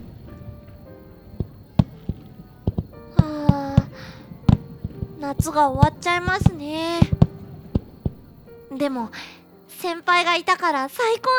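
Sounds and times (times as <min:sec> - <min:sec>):
firework booms: 0:00.0 - 0:08.6
low steady rumble: 0:00.0 - 0:08.8
speech: 0:05.2 - 0:07.1, 0:08.7 - 0:11.3.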